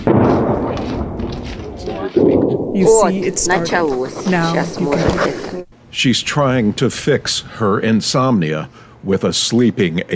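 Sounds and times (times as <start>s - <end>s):
speech: 0.0s - 1.0s, 2.1s - 10.1s
explosion in a city with a broad rumble: 0.0s - 5.6s.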